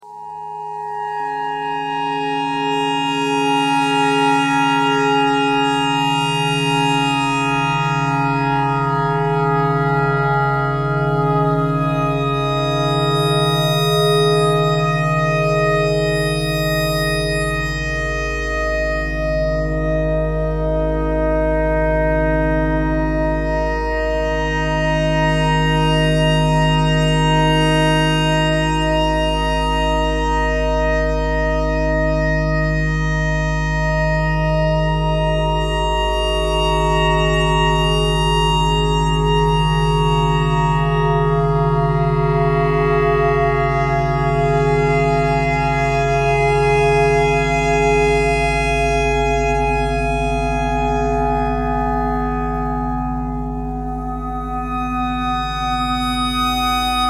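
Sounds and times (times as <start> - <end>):
clarinet playing pentatonic notes: 0.0 - 57.0.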